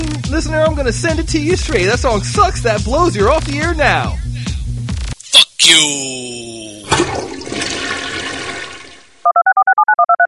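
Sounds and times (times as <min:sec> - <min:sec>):
speech: 0:00.3 - 0:04.3, 0:05.7 - 0:07.2
toilet flushing: 0:06.9 - 0:09.2
two-tone alternating electronic beeps: 0:09.2 - 0:10.2.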